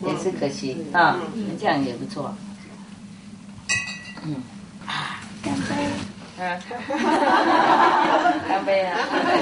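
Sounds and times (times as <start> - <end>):
speech: 0.2 - 2.5, 4.2 - 9.3
bright glass clink in a farewell toast: 3.7 - 4.3
laughter: 6.8 - 9.3.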